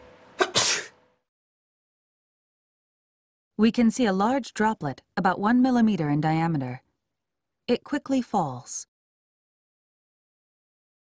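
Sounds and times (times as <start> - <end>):
person sneezing: 0.4 - 1.0
speech: 3.6 - 6.8, 7.7 - 8.9.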